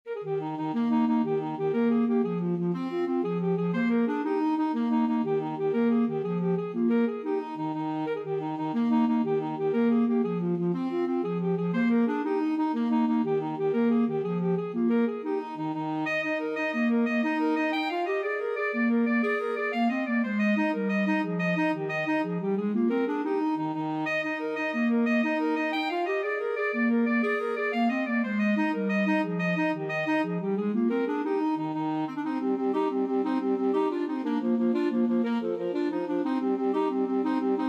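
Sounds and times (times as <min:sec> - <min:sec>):
clarinet and saxophone duet playing an Irish jig medley: 0:00.1 - 0:37.6.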